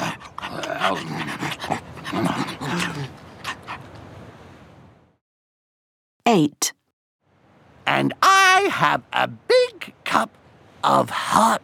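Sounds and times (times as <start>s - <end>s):
hungry sled dogs panting: 0.0s - 4.0s
speech: 0.8s - 3.2s, 6.4s - 6.8s, 8.0s - 11.6s.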